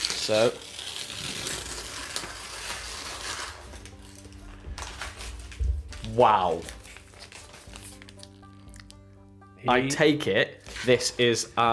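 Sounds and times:
wrapping paper crinkling and tearing open: 0.0 - 9.0
speech: 0.3 - 1.3, 6.1 - 6.8, 9.6 - 11.7.

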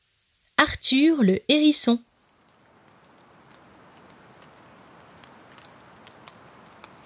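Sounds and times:
speech: 0.6 - 2.1
steady rain falling: 2.0 - 7.0.

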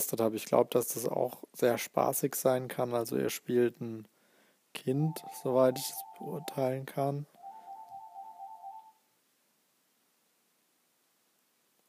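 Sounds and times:
speech: 0.0 - 4.1, 4.8 - 7.4
phone ringing with warbling electronic tone: 5.1 - 9.0.

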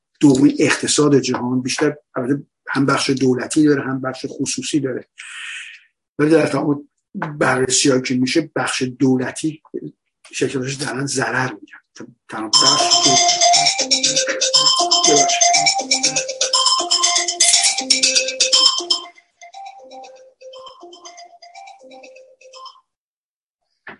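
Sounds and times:
speech: 0.2 - 5.6, 6.2 - 14.2, 15.0 - 16.4
phone ringing with loud melodic ringtone: 12.5 - 23.0.

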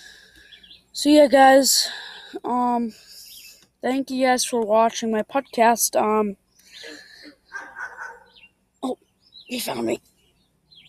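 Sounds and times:
speech: 1.0 - 3.1, 3.8 - 7.0, 8.8 - 10.1
dog whining in high thin whimpers: 7.5 - 8.3.

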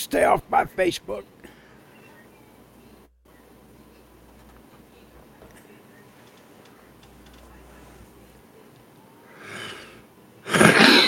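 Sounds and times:
speech: 0.0 - 1.4
breath intake: 9.3 - 11.0
person half throat-clearing half coughing: 10.5 - 11.0.

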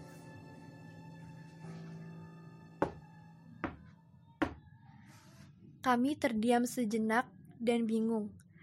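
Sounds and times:
sharp knocks on a door: 2.8 - 3.0, 3.6 - 4.6
speech: 5.8 - 8.4.

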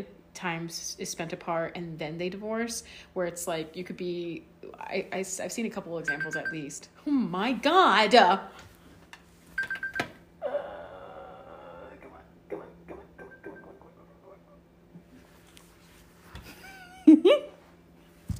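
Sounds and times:
speech: 0.0 - 8.7
phone alarm beeping: 6.1 - 6.7, 9.6 - 10.2.

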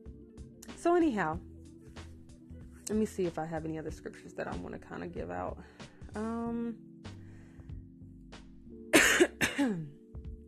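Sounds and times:
speech: 0.8 - 1.5, 2.9 - 6.9
person humming: 6.2 - 6.8
person clearing throat: 9.0 - 10.0
person coughing: 9.0 - 10.0.

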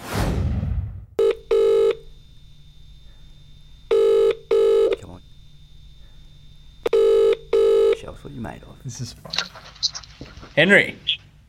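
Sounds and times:
outgoing call ringback tone: 1.2 - 2.6, 3.9 - 5.1, 6.8 - 8.1
speech: 8.2 - 11.1.

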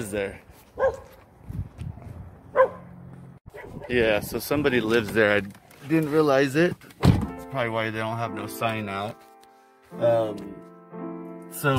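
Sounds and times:
speech: 0.0 - 1.6, 3.7 - 9.3, 9.9 - 10.6, 11.5 - 11.7
dog barking behind a house: 0.8 - 1.2, 2.5 - 2.9, 3.5 - 3.9.

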